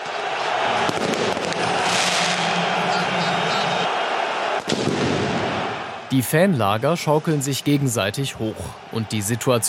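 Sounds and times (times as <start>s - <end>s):
dense roaring football stadium crowd: 0.0s - 9.6s
firecracker blasts thrown from a fan block in a football stadium: 0.8s - 2.8s, 4.6s - 5.8s
speech: 6.1s - 9.6s.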